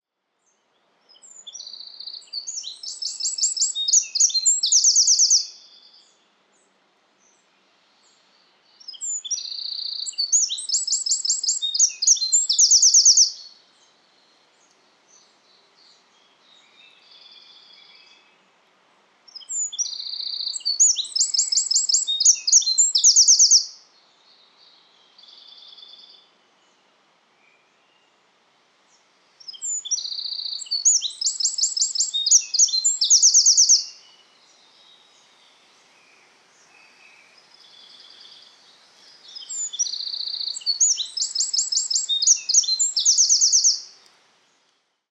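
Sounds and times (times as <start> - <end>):
Eurasian wren Troglodytes troglodytes singing: 1.1 - 6.2, 8.8 - 13.6, 19.3 - 23.8, 29.4 - 34.9, 36.6 - 44.1.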